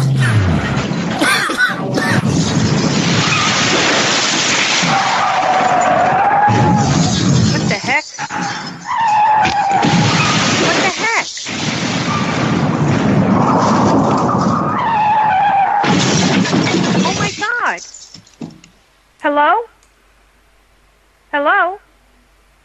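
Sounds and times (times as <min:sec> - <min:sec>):
heavy car crash impacts: 0:00.0 - 0:18.7
car tires screeching: 0:04.7 - 0:07.5, 0:08.2 - 0:10.6, 0:11.8 - 0:15.9.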